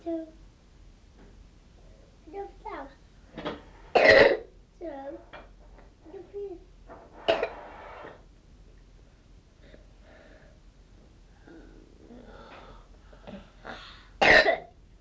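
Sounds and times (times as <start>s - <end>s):
person coughing: 4.0s - 4.4s, 14.2s - 14.7s.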